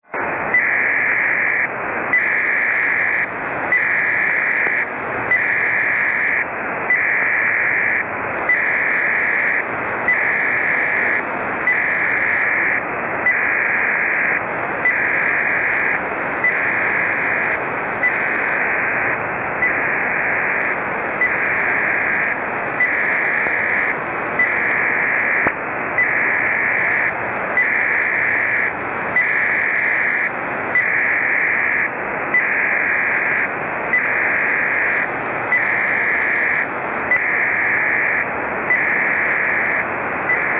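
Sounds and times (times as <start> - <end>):
Pactor 3 shore station radio data signal sent to a ship: 0.0 - 40.5.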